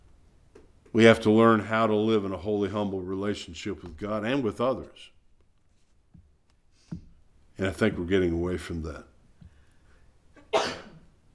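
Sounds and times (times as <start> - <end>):
speech: 1.0 - 5.1, 7.6 - 9.1
single sharp sneeze: 10.4 - 11.0.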